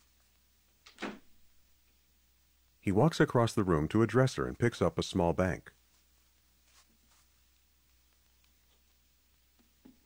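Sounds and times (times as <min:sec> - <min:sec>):
bedroom door closing: 0:00.9 - 0:01.4
speech: 0:02.8 - 0:05.8.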